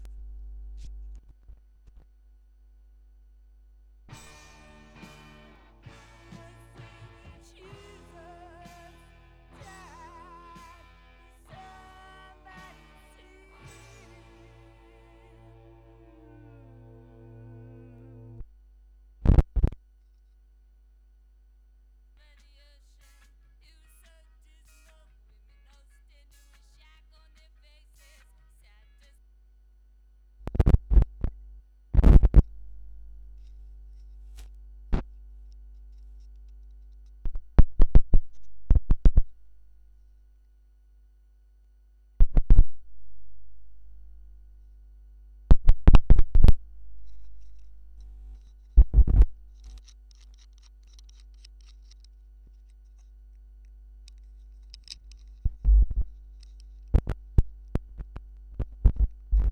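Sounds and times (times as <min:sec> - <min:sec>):
gramophone record noise on one channel: 0:04.0 - 0:18.6, 0:30.4 - 0:40.0, 0:42.2 - 0:59.5.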